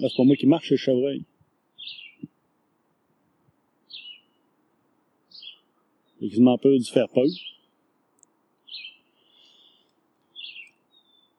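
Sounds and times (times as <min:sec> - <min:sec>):
speech: 0:00.0 - 0:02.3, 0:06.2 - 0:07.6
small birds chirping in the woods: 0:00.0 - 0:02.5, 0:03.5 - 0:11.3.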